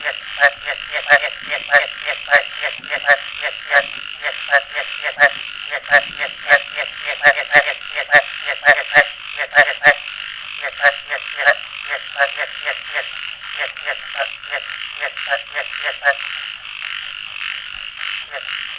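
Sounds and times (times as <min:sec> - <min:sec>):
frog calls of short pulsed notes: 0:00.0 - 0:18.7.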